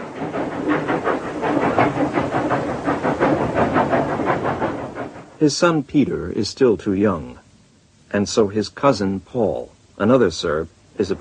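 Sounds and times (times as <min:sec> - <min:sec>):
train wheels clacking: 0:00.0 - 0:05.4
train rolling along rails with rumble and hiss: 0:00.0 - 0:06.5, 0:10.5 - 0:11.2
speech: 0:05.4 - 0:07.4, 0:08.1 - 0:11.2.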